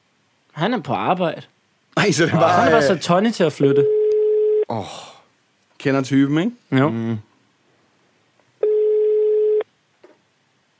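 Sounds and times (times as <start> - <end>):
speech: 0.6 - 4.0, 4.7 - 5.1, 5.8 - 7.3
telephone ringback tone on an outgoing call: 3.8 - 4.6, 8.6 - 9.6.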